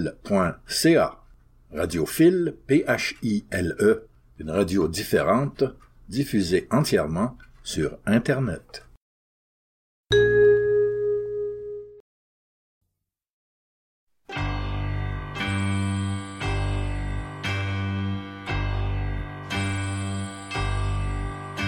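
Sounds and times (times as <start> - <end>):
speech: 0.0 - 8.9, 10.1 - 10.6
single bell ringing: 10.1 - 11.7, 14.3 - 21.6.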